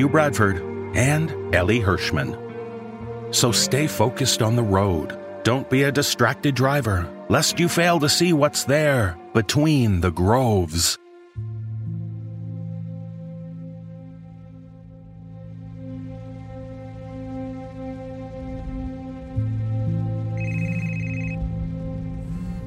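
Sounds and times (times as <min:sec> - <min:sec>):
speech: 0:00.0 - 0:02.4, 0:03.3 - 0:11.5
steady low droning musical background: 0:00.0 - 0:22.6
phone ringing with a bright electronic tone: 0:20.4 - 0:21.4.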